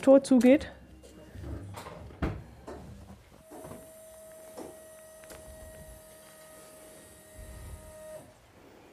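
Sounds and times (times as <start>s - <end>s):
speech: 0.0s - 0.8s
small electric Smart car maneuvering in a garage: 1.1s - 8.4s
clunks and thumps: 1.3s - 6.0s.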